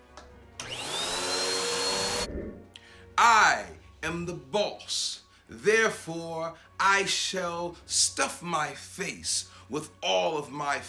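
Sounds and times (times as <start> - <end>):
vacuum cleaner running: 0.6 - 2.3
speech: 3.2 - 10.8.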